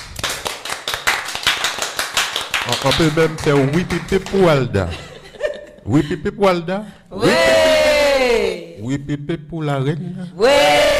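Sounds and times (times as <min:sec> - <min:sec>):
audience applause after a small show by a group of artists: 0:00.2 - 0:04.4
speech: 0:02.7 - 0:05.1, 0:05.8 - 0:07.6, 0:08.3 - 0:10.9
laughter: 0:04.8 - 0:06.3.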